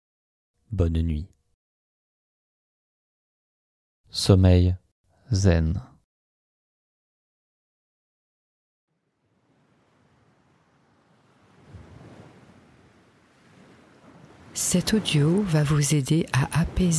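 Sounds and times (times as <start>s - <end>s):
speech: 0.7s - 1.4s, 4.1s - 5.9s, 14.6s - 16.9s
ocean surf: 9.2s - 16.9s.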